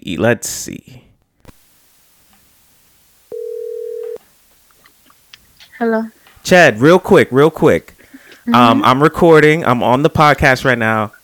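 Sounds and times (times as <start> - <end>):
speech: 0.0 - 1.0, 5.8 - 11.2
outgoing phone call ringback tone: 3.3 - 4.2.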